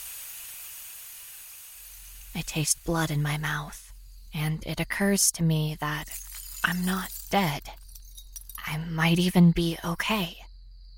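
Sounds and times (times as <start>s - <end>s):
steam hissing from a cracked car radiator: 0.0s - 2.4s
speech: 2.4s - 7.8s, 8.7s - 10.4s.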